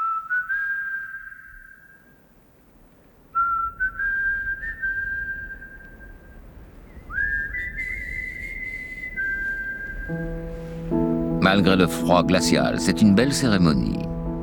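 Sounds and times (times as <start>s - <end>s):
whistled melody of a rock ballad: 0.0s - 2.1s, 3.4s - 6.2s, 6.9s - 14.4s
low rumbling outdoor background: 5.5s - 14.4s
speech: 11.5s - 14.1s.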